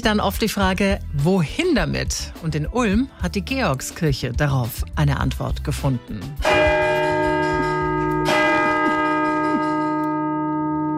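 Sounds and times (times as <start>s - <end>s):
speech: 0.0s - 6.7s
church bell strike clanging: 6.4s - 10.9s
church bell striking mechanism rattling: 6.5s - 10.6s.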